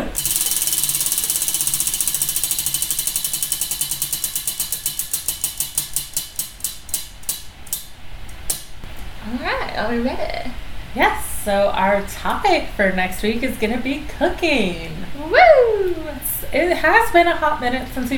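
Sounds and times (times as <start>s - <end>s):
wheel spun by hand ratcheting: 0.0s - 8.6s
speech: 9.8s - 18.1s.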